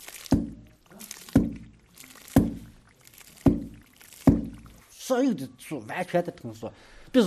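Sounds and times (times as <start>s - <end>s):
vinegar sloshing in a large vat stirred by hand during traditional fermentation: 0.0s - 5.1s
speech: 5.1s - 7.2s.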